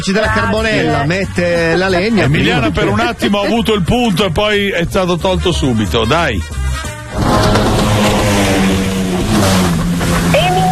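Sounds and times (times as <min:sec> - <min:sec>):
speech: 0:00.0 - 0:07.7
personal watercraft engine passing: 0:07.0 - 0:10.6.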